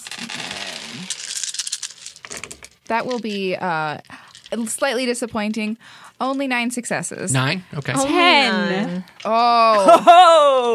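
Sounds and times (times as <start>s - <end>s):
handful of dice clattering across a hard tabletop: 1.1s - 3.4s
speech: 2.9s - 10.7s
laughter: 9.6s - 10.7s.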